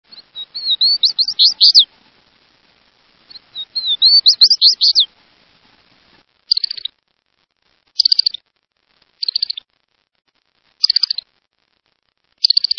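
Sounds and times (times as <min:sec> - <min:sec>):
Smiths Longspur calling: 0:00.1 - 0:01.9, 0:03.2 - 0:05.1, 0:06.5 - 0:06.9, 0:08.0 - 0:08.4, 0:09.2 - 0:09.6, 0:10.8 - 0:11.2, 0:12.4 - 0:12.7.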